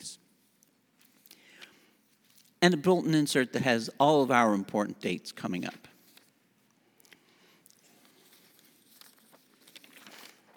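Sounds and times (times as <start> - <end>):
speech: 2.6 - 5.9
paper sheets being shuffled and handled: 5.9 - 6.4, 7.7 - 10.5.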